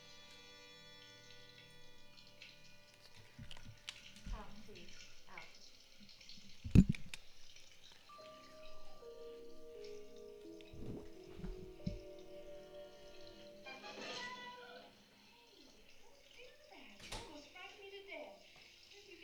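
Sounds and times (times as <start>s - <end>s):
shower water running: 0.0s - 19.2s
thumps: 3.3s - 13.5s.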